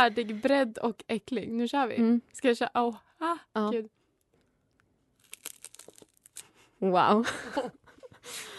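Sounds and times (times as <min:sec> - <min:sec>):
speech: 0:00.0 - 0:04.0, 0:06.8 - 0:08.5
biting into corn cake with ham: 0:05.2 - 0:06.5.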